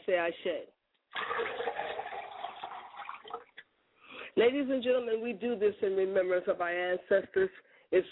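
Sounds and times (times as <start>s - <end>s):
speech: 0.1s - 1.6s, 4.4s - 8.0s
water poured as a libation: 1.1s - 3.6s.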